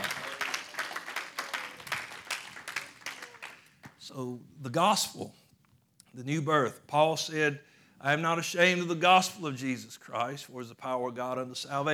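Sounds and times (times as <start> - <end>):
crowd applauding: 0.0 - 4.0
speech: 4.1 - 5.4, 6.2 - 11.9.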